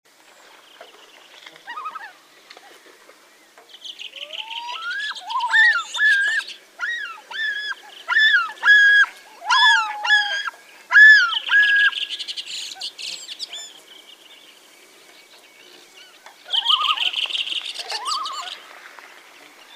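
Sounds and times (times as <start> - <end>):
common loon calling: 1.6 - 2.2, 4.1 - 13.8, 16.0 - 18.6.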